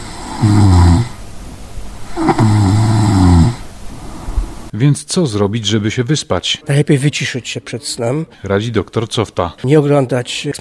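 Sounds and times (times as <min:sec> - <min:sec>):
sleeping person snoring loudly: 0:00.0 - 0:01.2, 0:02.0 - 0:03.7
speech: 0:00.4 - 0:00.8, 0:04.8 - 0:10.6.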